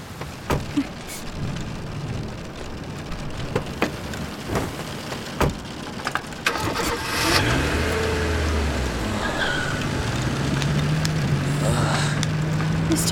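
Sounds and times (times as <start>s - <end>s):
car engine revving as the car speeds away from the side of a road: 0.0s - 13.0s
steady rain from a storm: 0.0s - 13.0s.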